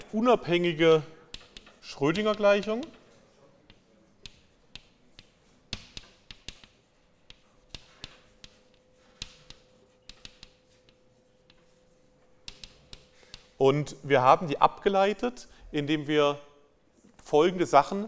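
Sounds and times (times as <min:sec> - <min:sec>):
writing tool tapping and scratching on a surface while handwriting an equation: 0:00.0 - 0:13.6
speech: 0:00.1 - 0:01.2, 0:01.8 - 0:03.0, 0:13.6 - 0:16.5, 0:17.3 - 0:18.0.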